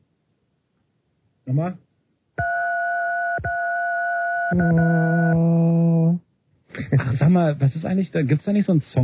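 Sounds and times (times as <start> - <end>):
speech: 1.5 - 1.9, 4.5 - 5.0, 7.3 - 9.0
two-note telephone keypad beep for the digit two: 2.4 - 5.3.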